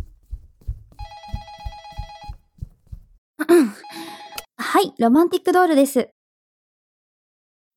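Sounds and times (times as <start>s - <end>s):
soft low thumps: 0.0s - 3.2s
telephone ringing with an electronic trill: 1.0s - 2.4s, 3.8s - 4.5s
speech: 4.8s - 6.2s.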